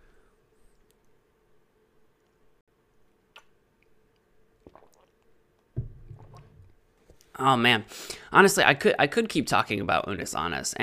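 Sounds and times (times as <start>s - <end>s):
person swallowing: 4.6s - 5.2s, 5.8s - 6.7s
person sipping coffee: 4.6s - 5.4s
speech: 7.4s - 10.8s.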